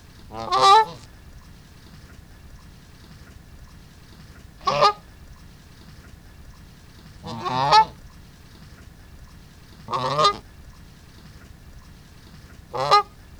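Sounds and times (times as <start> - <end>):
Branta canadensis loud call: 0.2 - 1.1, 4.6 - 5.0, 7.2 - 8.0, 9.9 - 10.5, 12.7 - 13.2.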